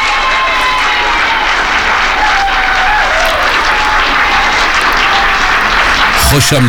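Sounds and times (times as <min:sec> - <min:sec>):
large crowd applause: 0:00.0 - 0:06.6
laughter: 0:00.0 - 0:06.6
speech: 0:06.3 - 0:06.6.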